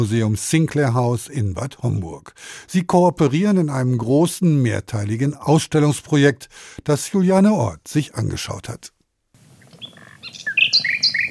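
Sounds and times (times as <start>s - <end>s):
speech: 0.0s - 9.0s
nightingale singing: 9.5s - 11.2s.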